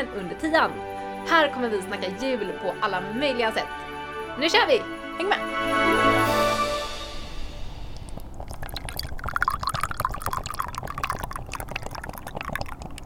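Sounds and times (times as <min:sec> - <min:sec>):
speech: 0:00.0 - 0:06.4
splashy fizzing bubbles in a glass: 0:06.9 - 0:13.0
crackle of settling foam: 0:07.2 - 0:13.0
liquid pouring into a glass outdoors by a lake on a cold sunny day: 0:07.7 - 0:13.0
small drips: 0:07.7 - 0:13.0.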